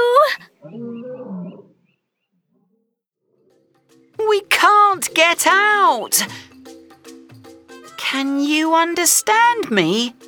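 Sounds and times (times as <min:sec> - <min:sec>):
lion roaring: 0:00.6 - 0:01.9
speech: 0:04.3 - 0:06.5, 0:08.1 - 0:10.2.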